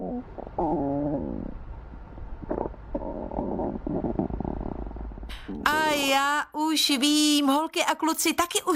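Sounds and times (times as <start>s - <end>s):
stomach rumbling: 0.0s - 5.8s
speech: 5.5s - 8.7s.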